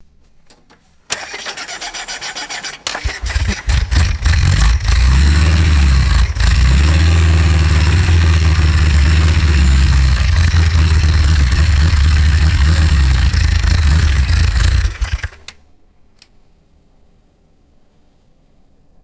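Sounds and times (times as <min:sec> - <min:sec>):
vintage bus engine starting and revving: 0:01.1 - 0:15.6.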